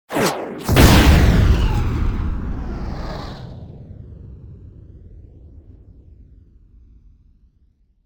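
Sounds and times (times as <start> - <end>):
flying shrapnel: 0.1 - 3.9
bomb explosion: 0.1 - 6.1.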